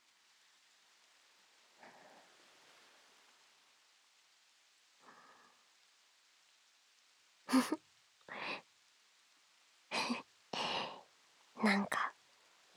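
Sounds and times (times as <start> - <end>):
steady rain hissing: 0.0 - 12.7
speech: 7.6 - 7.8, 11.6 - 12.0.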